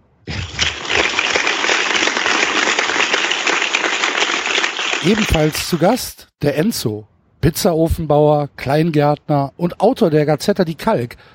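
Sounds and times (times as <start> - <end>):
audience applause with many hands clapping: 0.3 - 6.0
speech: 5.0 - 11.3.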